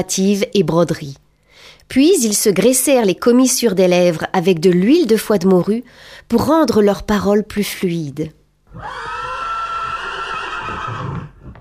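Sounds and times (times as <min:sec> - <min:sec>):
speech: 0:00.0 - 0:09.2
horse neighing in a long shrill whinny: 0:08.7 - 0:11.5.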